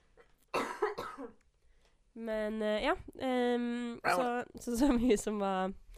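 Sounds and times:
harsh cough: 0:00.5 - 0:01.4
speech: 0:01.2 - 0:01.4, 0:02.2 - 0:05.8.

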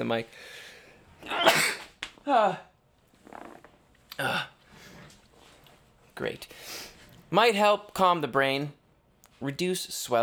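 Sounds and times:
speech: 0:00.0 - 0:00.6, 0:01.2 - 0:01.7, 0:02.3 - 0:02.7, 0:04.2 - 0:04.5, 0:06.2 - 0:08.8, 0:09.4 - 0:10.2
loud sneeze into the microphone: 0:01.2 - 0:02.5.

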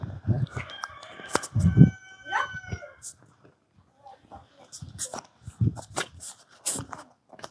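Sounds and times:
chickens squawking: 0:00.6 - 0:03.1.

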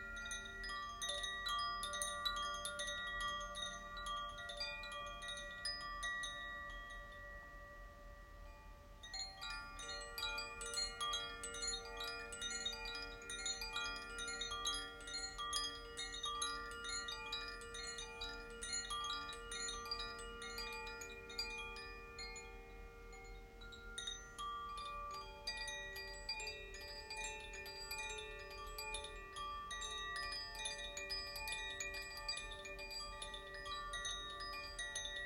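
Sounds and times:
two wind chimes tuned to water and fire ringing: 0:00.0 - 0:35.2.

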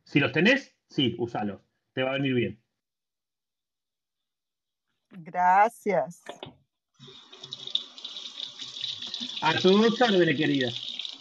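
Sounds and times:
speech: 0:00.1 - 0:02.6, 0:05.1 - 0:07.2, 0:09.4 - 0:10.8
small jar being washed in a sink: 0:07.0 - 0:11.1
tap water running into a sink: 0:07.0 - 0:11.1.

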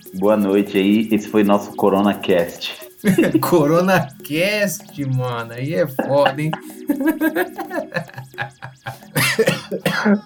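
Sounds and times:
speech: 0:00.0 - 0:10.2
voiced sounds like talk or laughter: 0:03.0 - 0:03.7, 0:05.7 - 0:09.9
harsh raspy coughs: 0:09.2 - 0:10.2.

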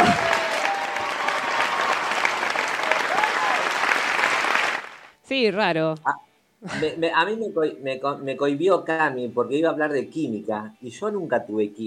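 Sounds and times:
audience applause: 0:00.0 - 0:05.1
speech: 0:05.3 - 0:11.8.

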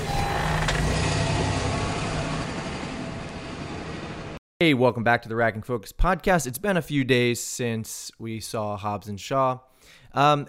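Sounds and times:
car engine starting and idling: 0:00.0 - 0:04.4
speech: 0:04.6 - 0:10.4.

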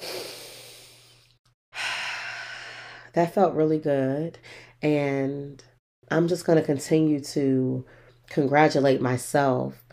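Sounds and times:
deep slow breath: 0:00.0 - 0:01.2, 0:01.8 - 0:03.1
speech: 0:03.1 - 0:09.9.

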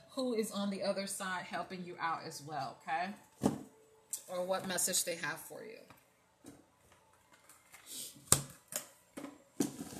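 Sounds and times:
speech: 0:00.2 - 0:03.5, 0:04.1 - 0:06.0
deck of numbered cards being shuffled for a card reading: 0:06.9 - 0:08.9.

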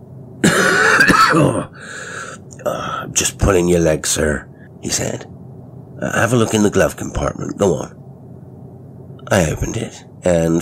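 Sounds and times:
loud raspy wheezing coughing fit: 0:00.4 - 0:01.8
person clearing throat: 0:00.4 - 0:01.8
speech: 0:01.3 - 0:05.4, 0:06.0 - 0:08.0, 0:09.3 - 0:10.6.

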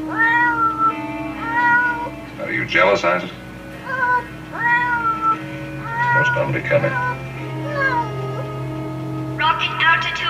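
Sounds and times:
cat meowing in drawn-out wavering cries: 0:00.1 - 0:02.2, 0:03.8 - 0:08.6
speech: 0:02.7 - 0:03.5, 0:06.2 - 0:07.1, 0:09.6 - 0:10.2.

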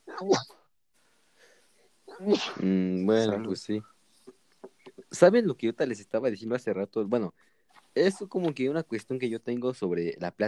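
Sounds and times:
person sneezing: 0:00.0 - 0:00.6, 0:02.1 - 0:03.4
speech: 0:00.2 - 0:00.6, 0:02.2 - 0:03.9, 0:05.1 - 0:10.4.

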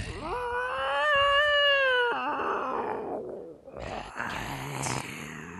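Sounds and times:
cartoon cat yowling: 0:00.1 - 0:03.6
cartoon cat hissing and snarling: 0:00.1 - 0:05.5.

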